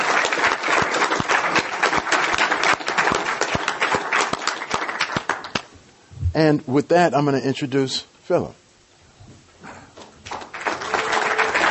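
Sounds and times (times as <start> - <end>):
audience applauding: 0.0 - 5.7, 10.2 - 11.6
speech: 6.4 - 8.6.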